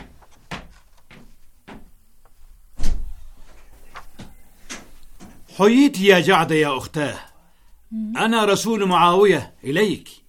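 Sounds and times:
heavy door thud: 0:02.8 - 0:03.2
speech: 0:05.6 - 0:07.3, 0:07.9 - 0:10.2.

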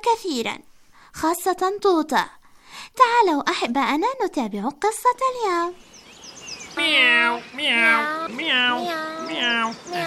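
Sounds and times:
speech: 0:00.0 - 0:05.9, 0:06.8 - 0:10.0
cat meowing: 0:06.8 - 0:10.0.

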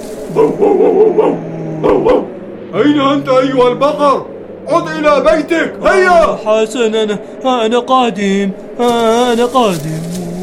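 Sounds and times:
steady low hum: 0:00.0 - 0:10.4
dog barking in short high yapping barks: 0:00.3 - 0:02.3
speech: 0:00.4 - 0:01.4, 0:02.8 - 0:10.4.

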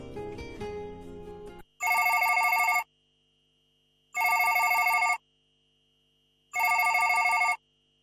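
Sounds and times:
music: 0:00.0 - 0:01.7
landline telephone ringing: 0:01.8 - 0:02.9, 0:04.2 - 0:05.2, 0:06.6 - 0:07.6.

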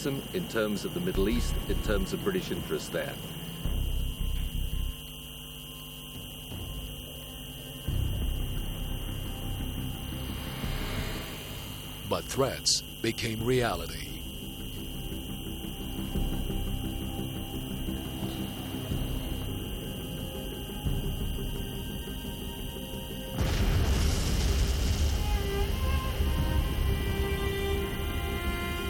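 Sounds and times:
speech: 0:00.0 - 0:03.4, 0:12.1 - 0:14.1
steady low hum: 0:00.0 - 0:28.8
loud explosion outside a railway station: 0:23.4 - 0:27.2.

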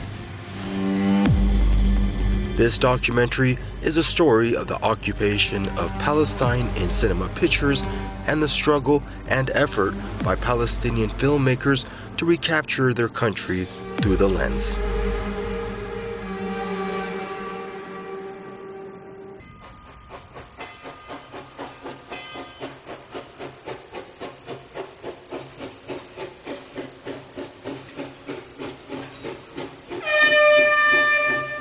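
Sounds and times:
steam locomotive chuffing past: 0:00.0 - 0:31.5
speech: 0:02.6 - 0:14.9.

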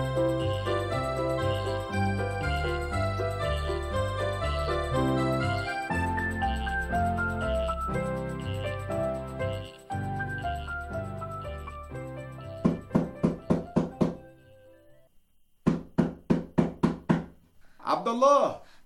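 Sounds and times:
soft music: 0:00.0 - 0:15.1
knocking on a door: 0:12.6 - 0:14.2, 0:15.6 - 0:17.4
speech: 0:18.0 - 0:18.6.

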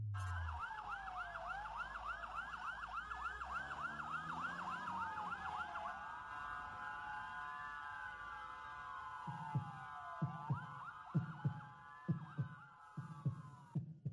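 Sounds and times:
wailing emergency siren: 0:00.1 - 0:13.7
heartbeat thumping in double beats: 0:09.5 - 0:14.1.

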